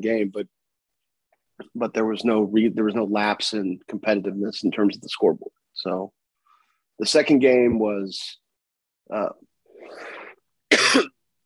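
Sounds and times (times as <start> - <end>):
speech: 0.0 - 0.6, 1.6 - 6.2, 7.0 - 8.4, 9.1 - 10.1
person with a cold coughing: 10.7 - 11.2.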